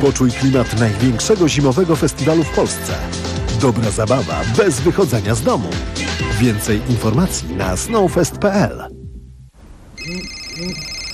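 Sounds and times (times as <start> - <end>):
speech: 0.0 - 9.0
telephone ringing with a high electronic ring tone: 10.0 - 11.1.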